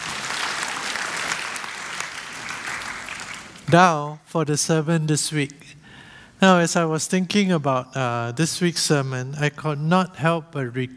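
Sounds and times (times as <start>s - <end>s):
congregation applauding: 0.0s - 3.8s
speech: 3.7s - 5.8s, 6.4s - 10.9s.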